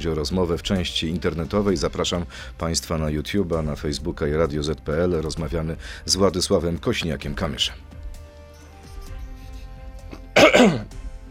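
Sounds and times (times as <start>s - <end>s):
speech: 0.0s - 8.0s, 10.6s - 10.8s
person clearing throat before an interview part: 10.1s - 10.9s.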